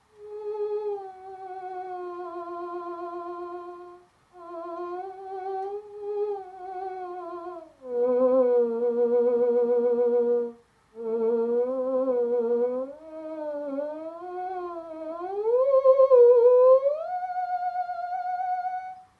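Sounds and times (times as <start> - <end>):
theremin: 0.2 - 19.0.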